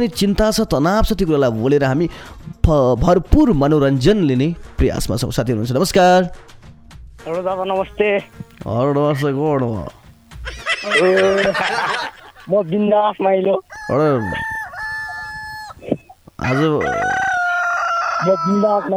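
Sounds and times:
speech: 0.0 - 6.5, 7.2 - 14.6, 16.4 - 17.2, 18.2 - 18.9
people talking and chuckling: 9.9 - 16.8
human voices imitating rooster crows: 10.4 - 12.6, 13.4 - 18.9.

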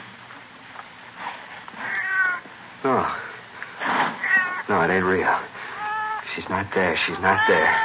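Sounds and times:
cat meowing: 1.8 - 2.5, 4.2 - 4.7, 5.7 - 6.3, 7.1 - 7.8
speech: 4.9 - 5.5, 6.3 - 7.8.

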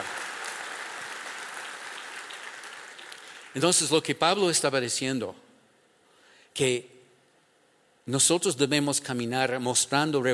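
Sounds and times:
congregation clapping during a church sermon: 0.0 - 4.1
speech: 3.6 - 5.4, 6.6 - 6.9, 8.0 - 10.3.

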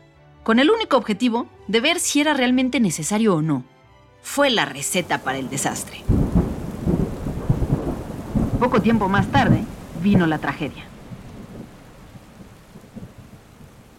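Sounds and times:
speech: 0.5 - 6.2, 8.6 - 10.9
steady rain hiss: 4.7 - 13.9
deep rolling thunder of a thunderstorm: 5.0 - 13.9.

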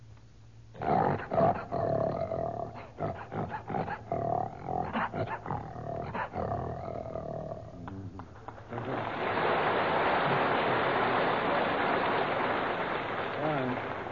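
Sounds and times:
steady hissing noise: 0.0 - 14.1
human voice imitating a lion's roar: 0.8 - 9.1.

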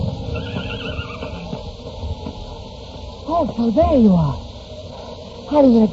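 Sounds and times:
steady rush of wind-like noise: 0.0 - 5.7
horse whinnying: 0.2 - 1.6
speech: 3.3 - 4.4, 5.5 - 5.9.

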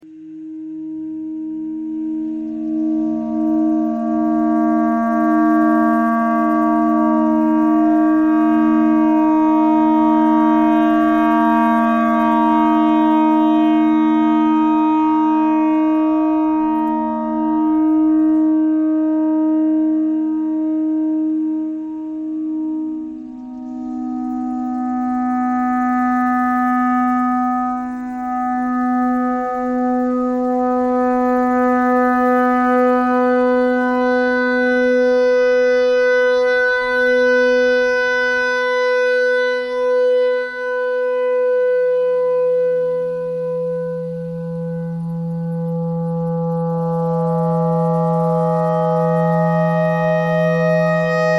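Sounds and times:
noise: 0.0 - 51.3
clarinet notes: 0.8 - 51.3.

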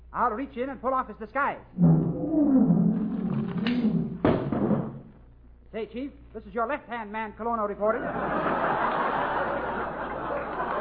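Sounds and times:
speech: 0.1 - 3.2, 5.7 - 9.1
lion roaring: 1.8 - 4.2
heavy thud: 1.8 - 5.1
laughter: 8.0 - 10.7.

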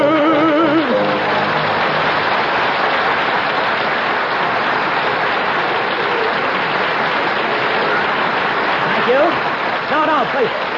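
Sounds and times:
large audience clapping: 0.2 - 10.7.

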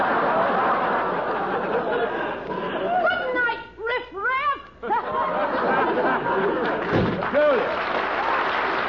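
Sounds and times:
laughter: 0.0 - 3.4, 4.8 - 8.7
door slamming shut: 6.8 - 7.2.

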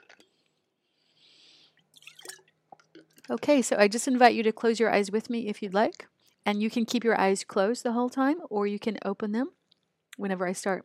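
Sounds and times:
sipping water: 0.0 - 3.5
wet mouth clicks and swallowing: 1.9 - 3.3
speech: 3.3 - 9.6, 10.2 - 10.8.

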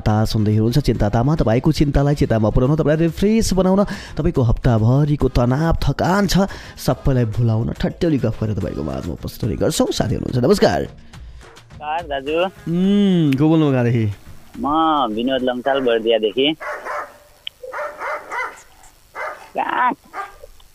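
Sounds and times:
speech: 0.0 - 11.2, 11.8 - 16.8, 19.6 - 20.2
pet dog barking: 15.6 - 20.5.

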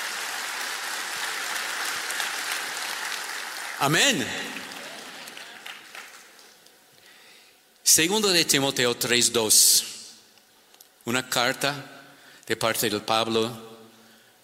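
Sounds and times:
congregation applauding: 0.0 - 6.6
speech: 3.8 - 4.6, 7.9 - 9.9, 11.1 - 13.7.

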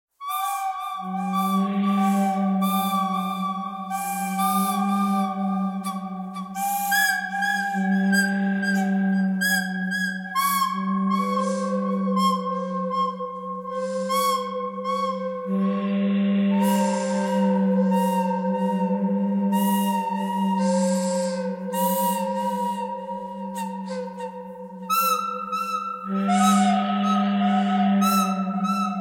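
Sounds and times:
pentatonic melody: 0.2 - 28.9.

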